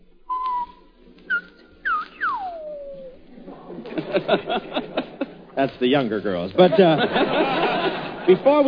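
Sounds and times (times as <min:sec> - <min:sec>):
person whistling a short sequence: 0:00.3 - 0:03.2
laughter: 0:03.3 - 0:05.6, 0:06.6 - 0:08.6
speech: 0:04.2 - 0:05.0, 0:05.6 - 0:07.6, 0:08.3 - 0:08.6.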